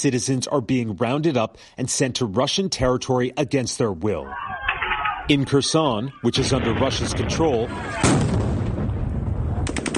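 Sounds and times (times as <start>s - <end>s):
speech: 0.0s - 4.6s, 5.3s - 8.4s
gunshots fired by troops to disperse a protest crowd: 6.4s - 8.9s, 9.6s - 9.9s
stun grenades fired by troops to disperse a protest crowd: 8.0s - 9.1s.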